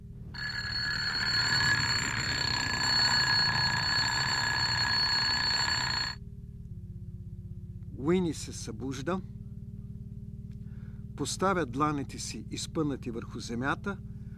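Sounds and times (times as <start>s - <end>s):
piercing bell ringing with a metallic buzz: 0.4s - 6.2s
speech: 8.1s - 9.4s, 11.2s - 14.1s.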